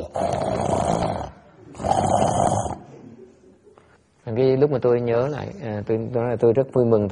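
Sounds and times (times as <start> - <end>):
speech: 0.0 - 0.4, 4.6 - 7.1
person snoring loudly during a meditation retreat: 0.0 - 2.9.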